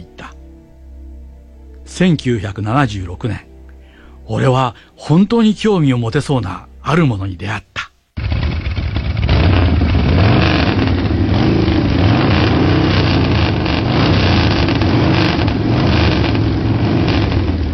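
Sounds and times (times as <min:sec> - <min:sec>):
speech: 0:01.9 - 0:03.5, 0:04.3 - 0:07.7
motorcycle engine running and revving: 0:08.2 - 0:17.7.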